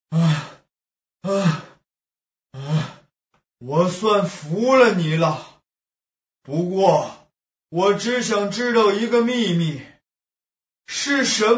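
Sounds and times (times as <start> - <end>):
person panting heavily, out of breath: 0.1 - 0.7, 2.6 - 3.1
speech: 3.6 - 5.5, 6.4 - 9.9, 10.9 - 11.5.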